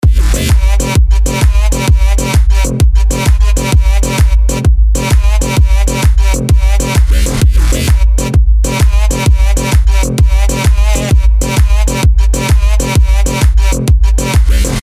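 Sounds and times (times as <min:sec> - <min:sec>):
Melbourne bounce electronic dance music: 0:00.0 - 0:14.8.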